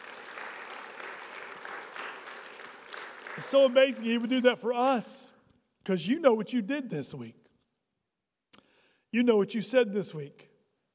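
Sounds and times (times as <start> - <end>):
congregation clapping hands in praise during a church service: 0.0 - 4.6
speech: 3.4 - 7.4, 9.1 - 10.5.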